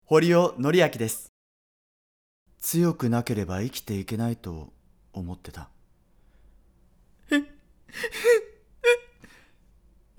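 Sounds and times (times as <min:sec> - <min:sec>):
speech: 0:00.1 - 0:01.3, 0:02.6 - 0:05.8, 0:07.3 - 0:08.5
person sobbing and wailing: 0:07.3 - 0:09.4.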